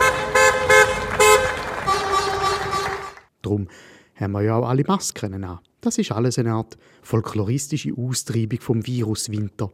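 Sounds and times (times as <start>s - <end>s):
car horns honking in a carnival-style ritual: 0.0s - 3.3s
people clapping in a carnival-style ritual: 0.3s - 3.3s
speech: 3.5s - 9.7s.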